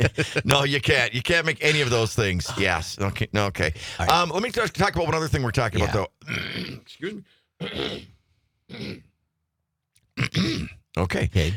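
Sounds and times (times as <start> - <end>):
speech: 0.0 - 9.1, 10.2 - 11.5
gruff throat-clearing coughs: 7.6 - 9.1, 10.2 - 10.9.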